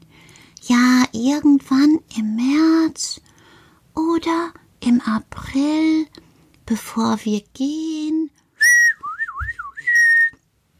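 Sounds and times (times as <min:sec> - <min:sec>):
speech: 0:00.7 - 0:03.2, 0:04.2 - 0:06.1, 0:06.7 - 0:07.9
person whistling a short clear phrase: 0:08.6 - 0:10.4.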